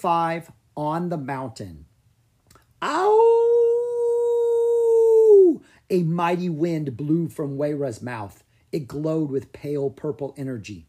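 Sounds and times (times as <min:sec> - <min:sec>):
speech: 0:00.0 - 0:01.9, 0:02.8 - 0:03.4, 0:05.5 - 0:10.8
dragon howling: 0:02.8 - 0:05.6.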